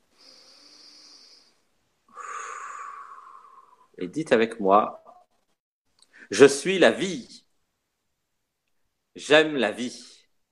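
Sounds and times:
loud airy exhale: 0.1s - 4.0s
slow deep breath drawn in: 0.1s - 4.0s
speech: 4.0s - 5.0s, 6.3s - 7.4s, 9.2s - 10.2s.

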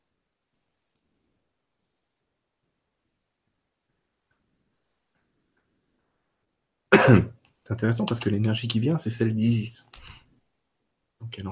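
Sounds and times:
short raspy throat-clearing cough: 6.9s - 7.4s
speech: 7.0s - 10.2s, 11.2s - 11.4s.

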